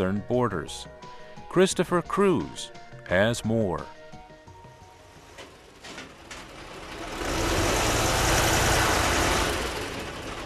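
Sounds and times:
speech: 0:00.0 - 0:04.0
heavy engine rumble of armored personnel carriers and tanks being loaded onto trucks in Afghanistan: 0:04.8 - 0:10.4.

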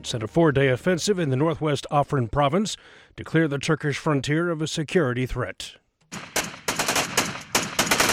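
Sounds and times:
speech: 0:00.0 - 0:06.4
automatic gunfire in an exchange of fire between fighters: 0:06.1 - 0:08.1.

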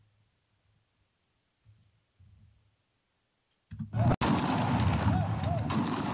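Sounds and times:
crowd roar at a street protest against police brutality in Lagos: 0:04.0 - 0:06.1
police gunfire crack at a street protest in Lagos: 0:04.0 - 0:06.1.

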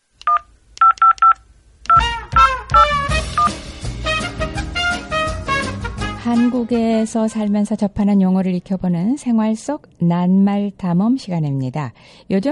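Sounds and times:
telephone keypad dialing tones: 0:00.2 - 0:02.8
loud music: 0:02.0 - 0:06.5
speech: 0:06.3 - 0:12.4.

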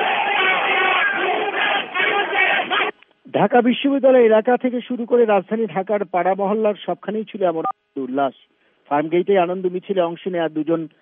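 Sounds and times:
large crowd chanting a victory slogan after a cricket win: 0:00.0 - 0:02.9
speech: 0:03.4 - 0:11.0.

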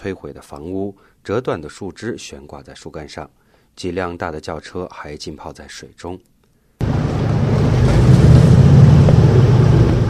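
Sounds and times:
speech: 0:00.0 - 0:06.3
outboard motors on inflatable boats droning: 0:06.8 - 0:10.0
water noise: 0:06.8 - 0:10.0
wind: 0:06.8 - 0:10.0.

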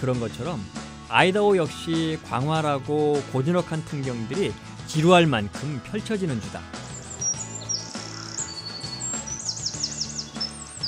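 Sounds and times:
speech: 0:00.0 - 0:06.8
mountain bluebird singing high quick chirps and warbling phrases: 0:06.4 - 0:10.8.

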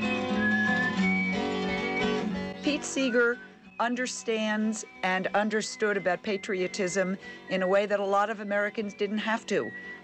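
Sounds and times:
man whistling the introduction to a patriotic song: 0:00.0 - 0:07.7, 0:08.7 - 0:10.0
speech: 0:02.7 - 0:10.0.

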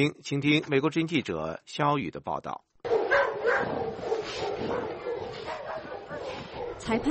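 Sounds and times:
speech: 0:00.0 - 0:02.7, 0:06.9 - 0:07.0
dogs fighting and scuffling: 0:02.8 - 0:07.0.

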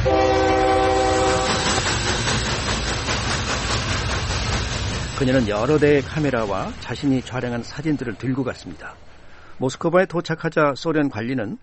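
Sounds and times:
Trans-Siberian train horn blast: 0:00.0 - 0:01.7
Trans-Siberian train rumbling along the rails: 0:00.0 - 0:10.5
speech: 0:05.2 - 0:11.6.

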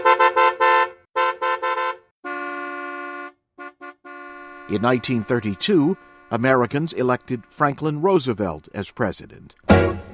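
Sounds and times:
car horn honking: 0:00.0 - 0:07.4
speech: 0:04.7 - 0:10.0.

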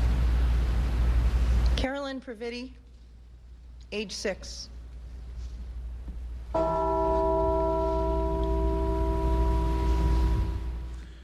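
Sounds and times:
low rumble: 0:00.0 - 0:11.2
speech: 0:01.8 - 0:02.8, 0:03.9 - 0:04.7, 0:06.5 - 0:06.9
single deep church bell tolling in memorial: 0:06.6 - 0:11.2.

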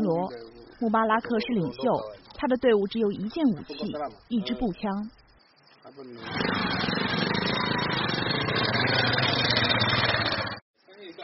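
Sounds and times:
speech: 0:00.1 - 0:05.2, 0:05.9 - 0:07.0
anti-poaching volunteer patrol motorcycle idling: 0:06.2 - 0:10.6.

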